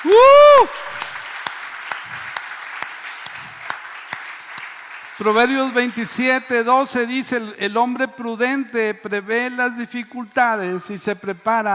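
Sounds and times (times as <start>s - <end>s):
church audience applauding: 0.0s - 7.2s
speech: 5.2s - 11.7s.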